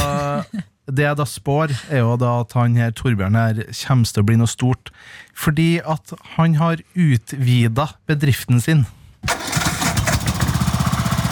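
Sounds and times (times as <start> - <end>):
laughter: 0.0 - 0.7
speech: 0.6 - 9.5
ride-on lawn mower engine starting and running: 9.3 - 11.2.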